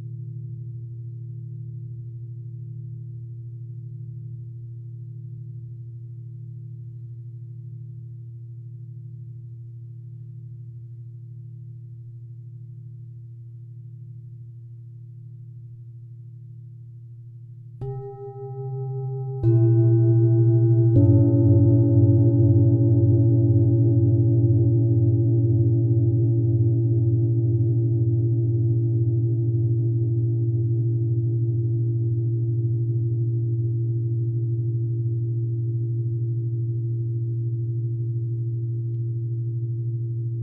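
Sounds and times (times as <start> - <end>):
singing bowl: 17.8 - 40.4.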